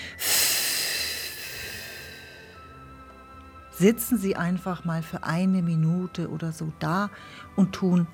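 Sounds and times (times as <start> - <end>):
long deep breath in and out: 0.0 - 2.7
speech: 3.8 - 8.1.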